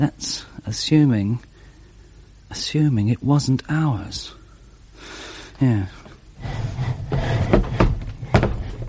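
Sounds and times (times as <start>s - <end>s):
speech: 0.0s - 1.5s, 2.5s - 4.4s, 5.0s - 6.6s
wooden chair knocking and scraping against a door: 6.4s - 8.8s.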